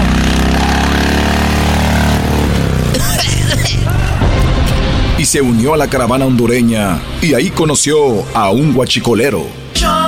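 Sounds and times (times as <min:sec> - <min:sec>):
motorcycle engine running in a tunnel: 0:00.0 - 0:05.1
speech: 0:05.3 - 0:10.0.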